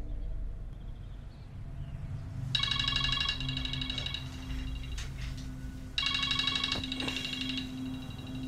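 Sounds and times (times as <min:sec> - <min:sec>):
low rumble: 0:00.0 - 0:08.4
mobile phone ringtone in a bedroom: 0:02.6 - 0:08.4.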